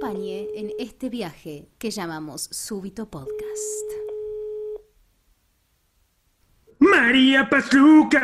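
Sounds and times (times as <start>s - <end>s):
electronic telephone tone as a call is placed: 0.0s - 0.9s, 3.2s - 4.8s
speech: 0.1s - 4.0s, 6.8s - 8.2s.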